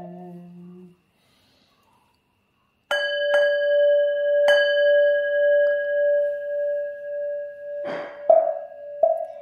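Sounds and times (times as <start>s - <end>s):
ritual bell struck to call the souls of the dead: 2.9s - 9.3s.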